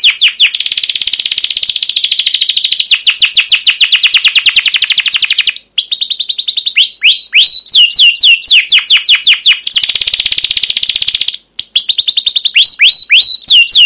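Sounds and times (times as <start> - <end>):
canary song used as a lure recording: 0.0 - 13.8.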